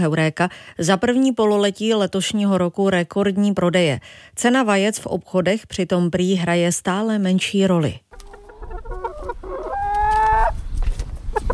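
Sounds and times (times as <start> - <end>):
speech: 0.0 - 8.1
hens clucking in a backyard henhouse in a garden: 8.1 - 10.6, 11.3 - 11.5.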